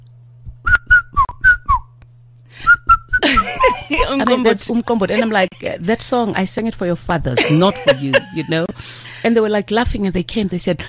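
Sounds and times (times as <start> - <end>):
steady low hum: 0.0 - 10.8
ten-year-old boys whistling a song's tune: 0.7 - 1.9, 2.6 - 3.2
laughter: 3.2 - 6.2, 7.4 - 8.8
speech: 3.9 - 10.8.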